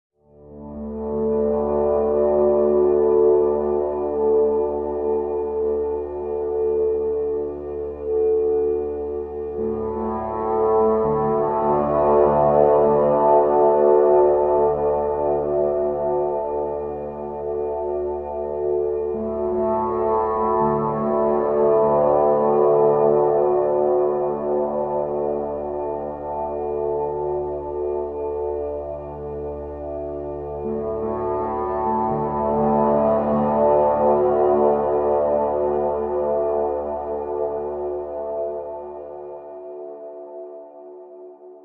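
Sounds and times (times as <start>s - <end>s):
middle eastern dark drone: 0.3s - 41.6s.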